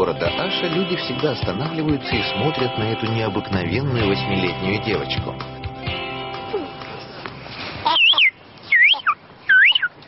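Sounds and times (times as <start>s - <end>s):
speech: 0.0s - 5.5s
8-year-old girl imitating birdsong: 7.9s - 9.8s.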